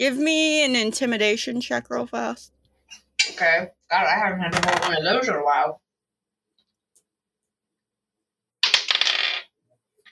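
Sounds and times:
speech: 0.0 - 2.6, 3.4 - 5.8
dice clattering across a hard tabletop: 4.5 - 5.0, 8.6 - 10.0.

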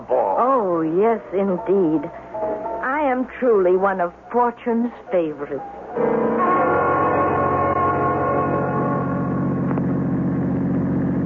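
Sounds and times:
speech: 0.1 - 2.2, 3.2 - 6.4
car engine droning while driving along a road at night: 6.0 - 11.2.

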